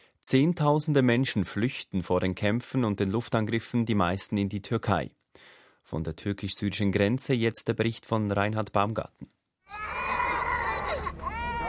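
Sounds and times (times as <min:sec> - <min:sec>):
speech: 0:00.2 - 0:10.0
children crying after receiving injections in the upper arm: 0:09.7 - 0:11.6.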